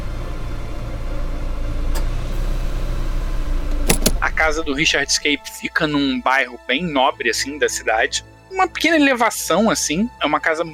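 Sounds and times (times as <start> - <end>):
steady low engine rumble inside a moving car: 0.0 - 5.4
brief sharp clicks: 3.7 - 4.3
speech: 4.4 - 10.7.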